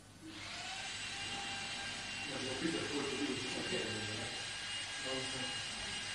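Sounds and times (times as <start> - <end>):
drill whining: 0.3 - 6.1
faint voices: 2.2 - 6.1.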